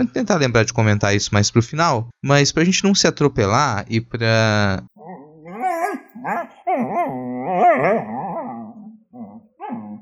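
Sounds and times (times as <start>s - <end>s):
speech: 0.0s - 4.9s
dog growling and barking: 5.0s - 10.0s.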